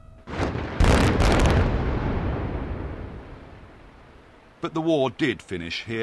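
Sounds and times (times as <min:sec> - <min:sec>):
controlled blast in a new modern diamond mine in eastern Sierra Leone: 0:00.3 - 0:04.3
speech: 0:04.6 - 0:06.0.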